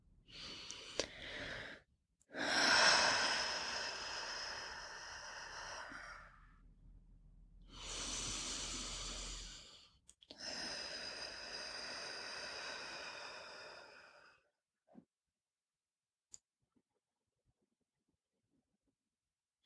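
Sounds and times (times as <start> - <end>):
slow deep breathing as a breathing exercise: 0.1 - 6.8, 7.6 - 14.5.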